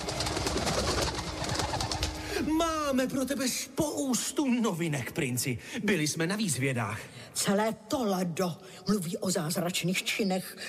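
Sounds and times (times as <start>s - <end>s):
owl and parrot wings flapping: 0.0s - 3.2s
speech: 2.9s - 10.6s.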